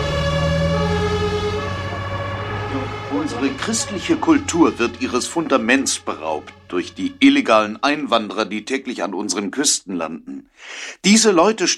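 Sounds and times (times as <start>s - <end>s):
ambulance siren wailing: 0.0s - 8.7s
speech: 3.4s - 11.7s.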